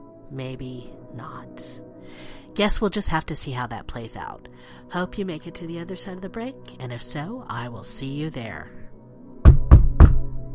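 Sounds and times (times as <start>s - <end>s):
speech: 0.3s - 8.8s
firm knocking on a wooden door: 9.4s - 10.3s.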